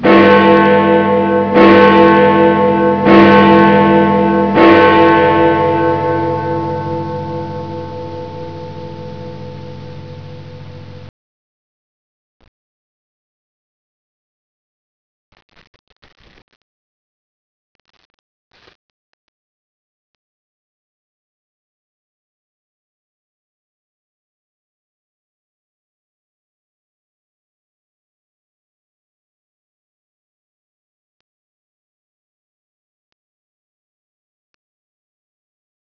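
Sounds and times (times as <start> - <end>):
cathedral bell bonging: 0.0 - 11.1.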